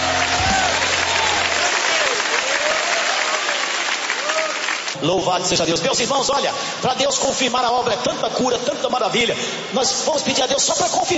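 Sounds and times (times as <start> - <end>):
crowd clapping enthusiastically in praise of God: 0.0 - 5.0
speech: 5.0 - 11.1.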